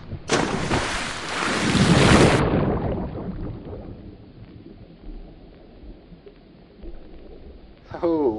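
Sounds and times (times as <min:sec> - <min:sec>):
water sloshing and bubbling: 0:00.0 - 0:08.3
splash of person jumping into water: 0:00.3 - 0:03.1.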